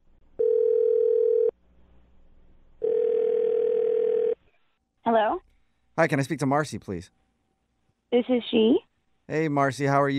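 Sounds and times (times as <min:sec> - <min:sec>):
long steady telephone tone: 0:00.4 - 0:01.5, 0:02.8 - 0:04.4
speech: 0:06.0 - 0:07.2, 0:08.1 - 0:10.1.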